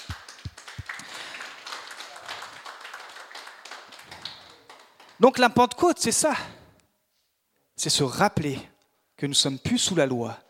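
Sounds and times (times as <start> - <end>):
crowd applauding: 0.0 - 5.5
speech: 5.2 - 6.6, 7.8 - 10.4.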